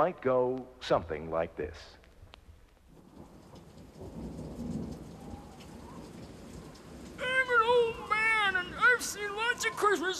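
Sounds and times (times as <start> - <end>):
speech: 0.0 - 2.0, 4.0 - 4.4, 9.0 - 10.1
steady heavy rain: 2.8 - 10.1
low rumble of thunder: 2.9 - 10.1.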